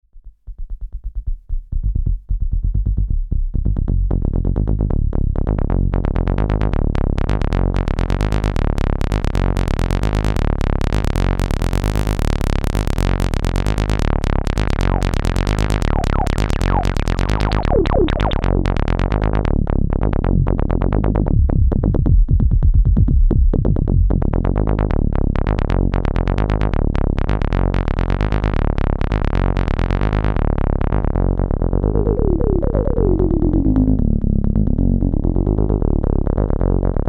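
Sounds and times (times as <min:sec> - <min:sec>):
Volca Bass synthesizer: 0:00.3 - 0:37.0.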